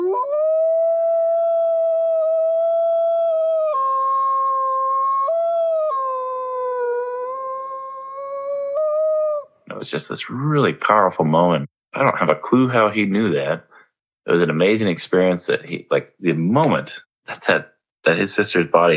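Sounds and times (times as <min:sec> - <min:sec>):
wolf howling: 0:00.0 - 0:09.6
speech: 0:09.8 - 0:13.7, 0:14.3 - 0:18.9.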